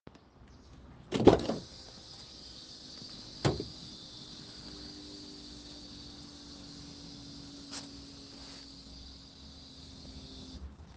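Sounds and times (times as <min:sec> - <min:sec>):
car unlocking sound: 0:01.1 - 0:01.7.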